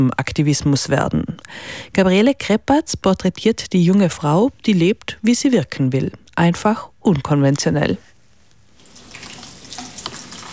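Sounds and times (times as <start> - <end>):
speech: 0.0 - 8.1
water pouring as flowers are watered: 8.8 - 10.5.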